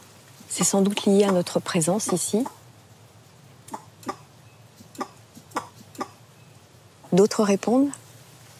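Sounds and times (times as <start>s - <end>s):
faintly rustling forest background: 0.0s - 8.5s
speech: 0.6s - 2.6s, 7.1s - 8.0s
sifaka lemur explosive sneeze-like alarm calls: 1.1s - 2.6s, 3.6s - 6.4s.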